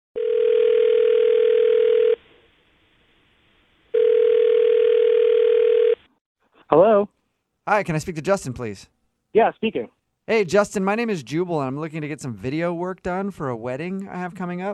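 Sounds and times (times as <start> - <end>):
long steady phone ringback tones: 0.2 - 2.2, 3.9 - 6.0
speech: 7.7 - 14.7.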